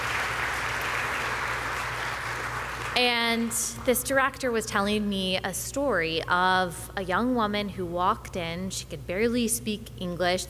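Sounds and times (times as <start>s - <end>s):
crowd applauding: 0.0s - 3.9s
speech: 3.0s - 10.4s.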